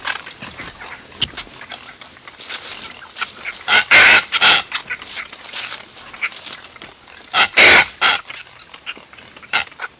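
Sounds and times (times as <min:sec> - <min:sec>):
soft scattered bird calls: 0:00.0 - 0:09.9
red-footed booby harsh grating squawks: 0:03.4 - 0:04.8, 0:07.3 - 0:08.3.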